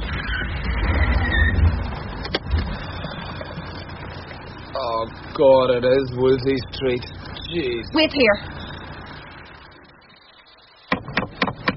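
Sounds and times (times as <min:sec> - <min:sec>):
low rumble: 0:00.0 - 0:10.5
speech: 0:05.0 - 0:08.6
firm knocking on a front door: 0:10.9 - 0:11.7.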